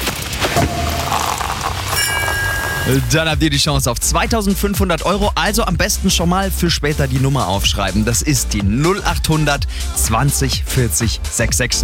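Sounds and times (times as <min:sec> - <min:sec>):
sparkling wine cork popping: 0:00.6 - 0:02.9
bright thin ringing tone: 0:00.6 - 0:03.2
speech: 0:02.9 - 0:11.8.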